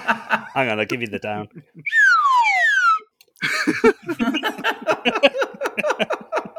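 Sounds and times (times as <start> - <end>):
laughter: 0.0 - 6.5
speech: 0.1 - 2.0, 3.6 - 6.0
clear whistle gliding downward in pitch: 1.8 - 3.2.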